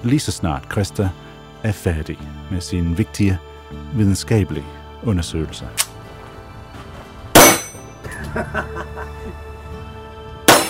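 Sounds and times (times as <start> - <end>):
speech: 0.0 - 5.9, 8.4 - 8.9
shots striking a metal shooting target: 7.3 - 8.0, 10.5 - 10.6
laughter: 8.0 - 9.5.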